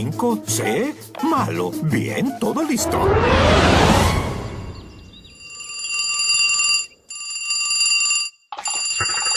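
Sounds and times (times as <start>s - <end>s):
speech: 0.0s - 4.1s
loud burst of noise: 2.8s - 5.0s
telephone bell ringing: 5.2s - 9.3s.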